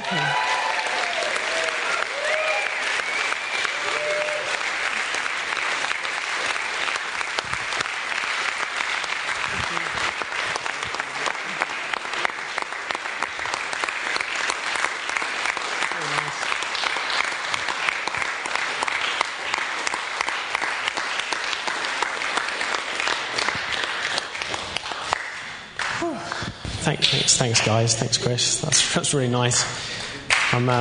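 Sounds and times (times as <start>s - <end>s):
scattered whoops and cheers: 0.0s - 4.7s
large standing audience applauding: 0.0s - 26.6s
speech: 27.4s - 30.7s.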